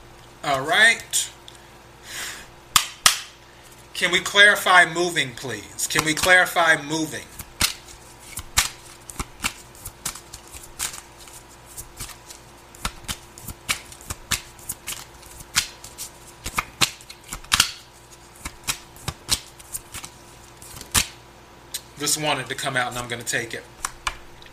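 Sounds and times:
speech: 0:00.4 - 0:01.4, 0:04.0 - 0:07.3, 0:22.1 - 0:23.8
tarot cards being shuffled during a card reading: 0:07.2 - 0:21.2.

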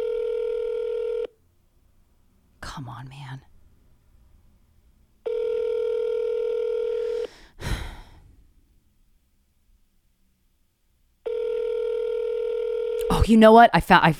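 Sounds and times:
electronic phone ringback tone ringing unanswered: 0:00.0 - 0:01.3, 0:05.2 - 0:07.3, 0:11.2 - 0:13.2
speech: 0:02.6 - 0:03.5, 0:13.3 - 0:14.1
sharp breath: 0:07.0 - 0:08.3.

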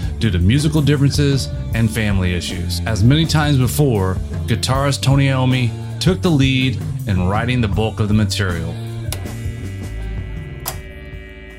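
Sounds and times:
speech: 0:00.2 - 0:08.8
guitar amplifiers humming at maximum volume: 0:05.1 - 0:11.5.

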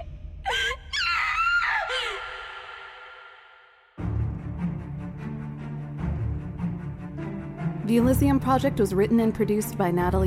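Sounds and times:
loud high-pitched scream: 0:00.5 - 0:03.7
low droning musical swell: 0:04.0 - 0:10.2
speech: 0:07.9 - 0:10.2.

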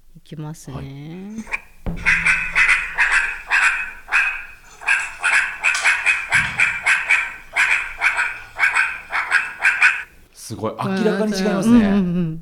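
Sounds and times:
speech: 0:00.2 - 0:02.2, 0:10.5 - 0:12.4
animal giving harsh barking alarm calls: 0:00.7 - 0:10.3.

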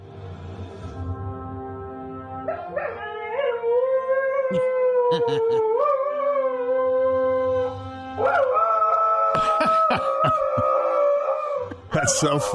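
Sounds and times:
dog howling along to theme music: 0:02.6 - 0:07.4, 0:08.2 - 0:11.8
laughter: 0:04.5 - 0:05.6, 0:09.4 - 0:10.8, 0:11.7 - 0:12.5
speech: 0:04.5 - 0:05.7, 0:12.1 - 0:12.5.

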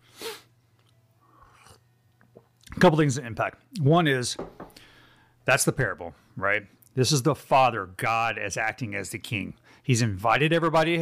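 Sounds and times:
someone sipping a hot drink: 0:01.3 - 0:01.8
speech: 0:02.8 - 0:04.6, 0:05.5 - 0:10.9.

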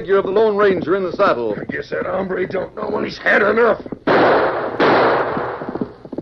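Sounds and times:
speech: 0:00.0 - 0:04.8
long rumbling echo of revolver gunshots: 0:03.8 - 0:06.2
revolver gunshots fired from horseback along a trail: 0:04.0 - 0:06.0.

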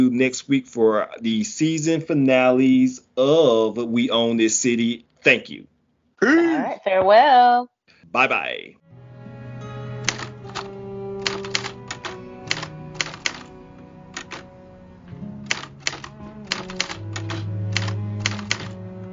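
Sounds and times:
speech: 0:00.0 - 0:08.8
typewriter-like keyboard typing: 0:10.1 - 0:13.5, 0:14.1 - 0:14.5, 0:15.5 - 0:18.8.

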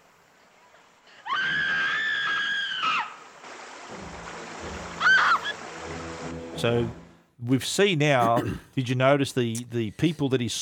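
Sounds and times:
rushing river water: 0:00.2 - 0:07.1
woman screaming while drowning in a river: 0:01.2 - 0:03.2, 0:05.0 - 0:05.6
speech: 0:06.6 - 0:10.6.

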